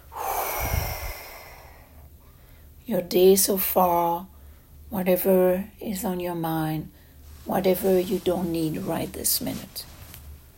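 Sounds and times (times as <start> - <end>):
deep breathing in and out: 0.0 - 2.8
speech: 2.9 - 4.3, 4.9 - 9.9.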